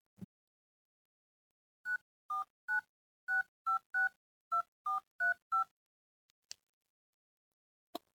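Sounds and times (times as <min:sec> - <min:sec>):
phone keypad beeps dialing a phone number at a daycare center: 0:01.9 - 0:05.7.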